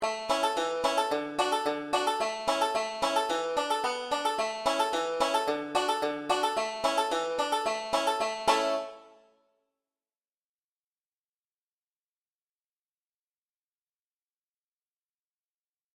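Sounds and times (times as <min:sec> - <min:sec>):
five-string banjo accompaniment in the key of A without melody: 0:00.0 - 0:09.3.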